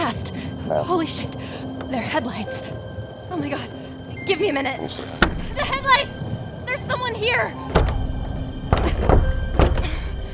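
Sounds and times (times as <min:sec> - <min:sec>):
speech: 0:00.2 - 0:08.0
thuds and knocks from a stuck door being forced: 0:07.7 - 0:10.2.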